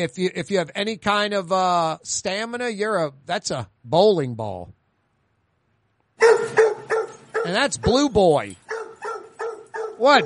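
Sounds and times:
speech: 0.0 - 4.8, 7.4 - 8.6, 10.0 - 10.2
dog barking: 6.2 - 7.7, 8.7 - 10.2.

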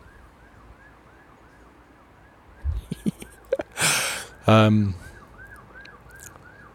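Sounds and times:
faint emergency siren wailing outdoors on a grey wet evening: 0.0 - 6.7
person laughing: 2.7 - 4.3
speech: 4.5 - 5.0.

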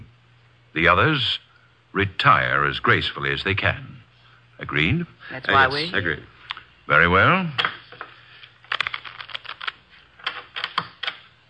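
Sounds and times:
faint low hum: 0.0 - 11.4
speech: 0.7 - 1.4, 2.0 - 4.0, 4.6 - 6.3, 6.9 - 7.7
deck of playing cards being shuffled for poker: 8.0 - 11.2.

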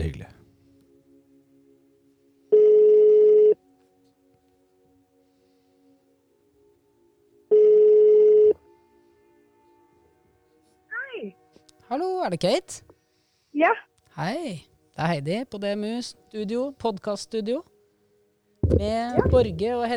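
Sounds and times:
telephone ringing on an outgoing call: 2.5 - 3.6, 7.5 - 8.6, 18.6 - 19.9
speech: 11.9 - 12.9, 13.6 - 17.7, 18.7 - 19.9.

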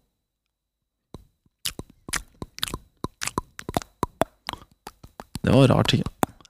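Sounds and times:
crunchy chewing: 1.6 - 6.4
speech: 5.4 - 6.1.

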